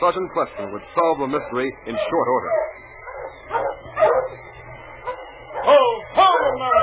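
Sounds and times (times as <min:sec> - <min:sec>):
speech: 0:00.0 - 0:02.8
low steady hum: 0:00.0 - 0:06.8
dog barking with a faint whining quality: 0:01.9 - 0:04.4, 0:05.0 - 0:06.8.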